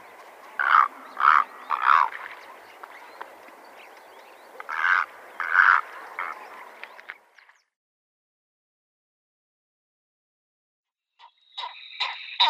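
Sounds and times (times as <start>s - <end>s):
purple heron giving harsh croaking calls: 0.6s - 2.3s, 4.6s - 6.6s.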